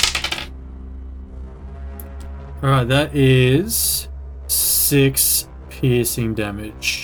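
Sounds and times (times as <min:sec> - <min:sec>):
small dice tumbling across a hard surface: 0:00.0 - 0:00.5
speech: 0:02.6 - 0:07.0.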